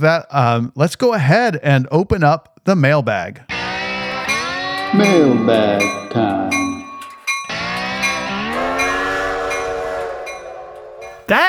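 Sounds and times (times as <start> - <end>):
speech: 0.0 - 3.5, 4.9 - 6.7, 11.3 - 11.4
train whistle blast: 3.6 - 11.4.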